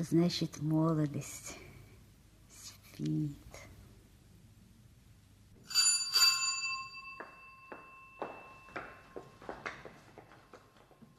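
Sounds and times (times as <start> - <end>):
speech: 0.0 - 1.6, 3.0 - 3.7
doorbell ringing with bright metallic tone: 5.6 - 10.0.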